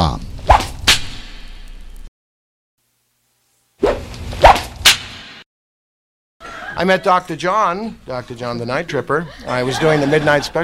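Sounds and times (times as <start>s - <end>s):
sharp whip crack with a swishing tail: 0.4s - 1.6s, 3.8s - 5.4s
laughter: 6.4s - 7.3s, 8.3s - 10.6s
speech: 6.8s - 10.6s.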